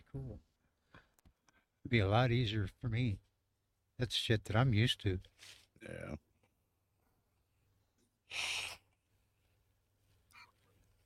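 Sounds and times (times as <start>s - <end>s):
speech: 0.1s - 0.5s, 1.9s - 3.3s, 4.0s - 6.3s, 8.3s - 8.8s
person blowing nose hard: 8.3s - 8.9s
faint sniff: 8.3s - 9.0s.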